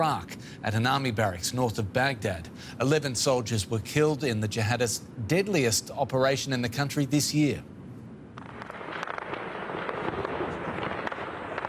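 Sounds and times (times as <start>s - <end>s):
speech: 0.0s - 7.7s
intense gunfire: 8.4s - 11.6s.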